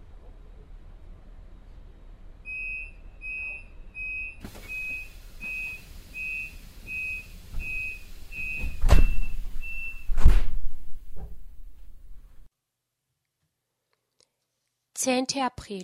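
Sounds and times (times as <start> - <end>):
short high-pitched train departure warning beeps: 2.5 - 10.1
train doors thudding shut before departure: 4.4 - 12.4
speech: 15.0 - 15.8.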